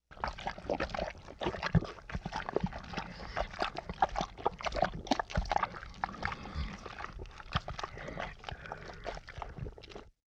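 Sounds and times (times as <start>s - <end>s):
bubbly slime ingestion for horror sound design: 0.1s - 10.2s.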